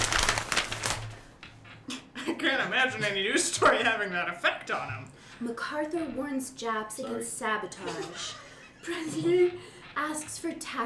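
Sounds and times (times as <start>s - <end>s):
newspaper pages rustling: 0.0s - 1.4s
speech: 2.3s - 10.8s.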